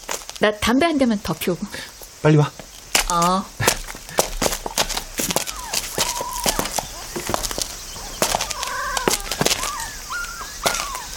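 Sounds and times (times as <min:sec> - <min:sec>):
speech: 0:00.4 - 0:03.6
rustling: 0:01.9 - 0:11.1
young puppies whimpering and whining inside a box: 0:05.3 - 0:11.1.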